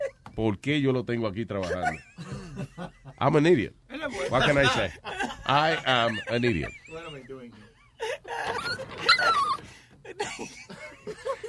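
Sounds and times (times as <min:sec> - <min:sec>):
speech: 0:00.4 - 0:06.8
laughter: 0:01.6 - 0:03.2, 0:04.1 - 0:11.4
dog whimpering and crying: 0:08.3 - 0:09.6.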